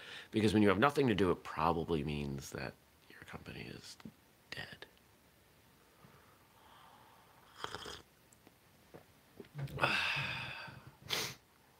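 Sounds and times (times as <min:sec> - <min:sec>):
speech: 0:00.3 - 0:04.9, 0:09.6 - 0:10.2
cat breathy snuffling bursts: 0:11.0 - 0:11.4.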